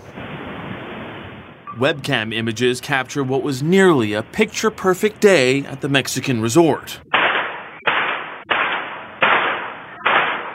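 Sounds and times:
speech: 1.8s - 7.2s
gunshots from a gunman's attack at a Mexican resort: 7.1s - 10.5s.

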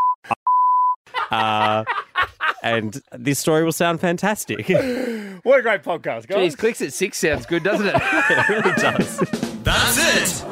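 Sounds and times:
censor beeps at a steady mid pitch: 0.0s - 1.0s
laughter: 1.1s - 3.1s, 4.4s - 5.0s, 6.6s - 10.4s
speech: 1.3s - 2.0s, 2.6s - 9.5s
person groaning: 4.7s - 5.3s.

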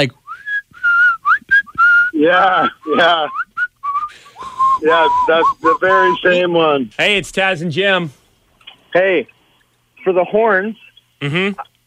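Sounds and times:
speech: 0.0s - 0.2s, 2.2s - 3.4s, 4.8s - 8.2s, 8.9s - 9.4s, 10.0s - 11.7s
person whistling a film-theme melody: 0.3s - 2.2s, 3.0s - 6.4s.

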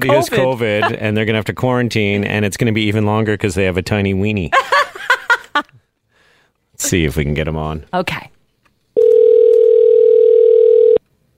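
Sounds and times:
laughter: 0.0s - 1.0s, 4.6s - 5.7s
speech: 0.0s - 5.8s, 6.8s - 8.4s
phone ringback tone of an outgoing call: 9.0s - 11.0s.

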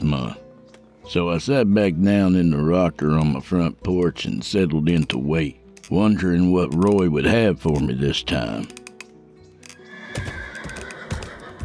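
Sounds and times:
speech: 0.1s - 0.4s, 1.1s - 8.8s
hard-ridden horses whinnying: 9.8s - 11.6s
heavy hoof clops of horses approaching a house: 10.2s - 11.6s.

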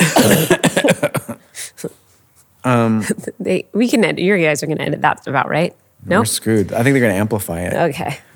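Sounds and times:
harsh hacking coughing: 0.0s - 1.5s
speech: 2.6s - 8.3s.

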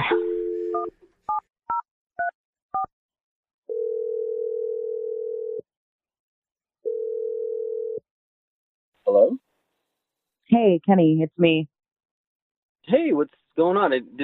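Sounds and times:
long steady telephone tones: 0.0s - 0.9s, 3.7s - 5.6s, 6.8s - 8.0s
speech: 10.5s - 11.7s, 12.8s - 14.2s.

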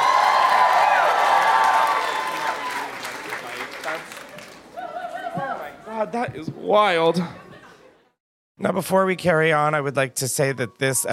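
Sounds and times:
audience clapping: 0.0s - 4.8s
audience cheering: 0.0s - 5.7s
speech: 6.1s - 7.4s, 8.6s - 11.1s
laughter: 6.4s - 8.2s.

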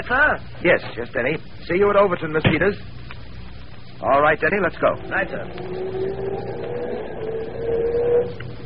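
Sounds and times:
speech: 0.0s - 3.1s, 4.0s - 6.8s
car engine humming as the vehicle pulls away: 4.4s - 8.6s.

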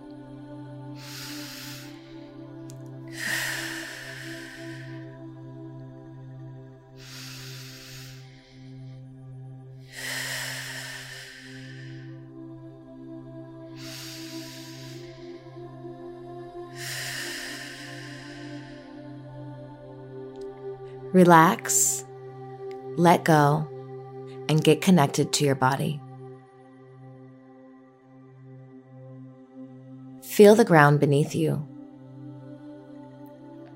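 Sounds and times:
calm music drone: 0.0s - 33.7s
deep breaths: 0.8s - 21.1s
speech: 21.1s - 21.9s, 23.0s - 23.7s, 24.5s - 26.0s, 30.4s - 31.7s.

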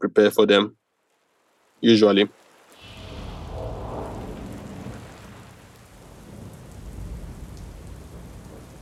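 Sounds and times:
speech: 0.2s - 0.8s, 1.8s - 2.4s
steady rain: 0.4s - 8.8s
deep thunder rolling: 2.8s - 8.8s.

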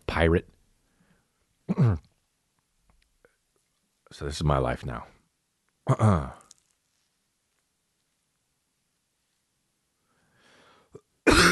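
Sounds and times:
speech: 0.2s - 0.6s, 4.2s - 5.2s, 5.9s - 6.4s
man coughing: 1.7s - 2.1s, 5.9s - 6.4s, 11.0s - 11.5s
faint raspy breath: 10.0s - 11.0s.

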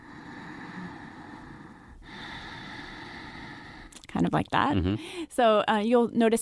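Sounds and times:
ujjayi breath, yoga pranayama breathing through a narrowed throat: 0.0s - 3.9s
speech: 4.1s - 6.4s.

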